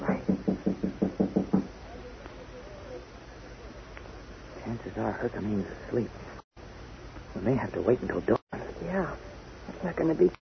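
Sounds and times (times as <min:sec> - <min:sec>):
soft knocking on a bolted door: 0:00.0 - 0:01.8
speech: 0:05.0 - 0:06.3, 0:07.4 - 0:09.2, 0:09.9 - 0:10.4.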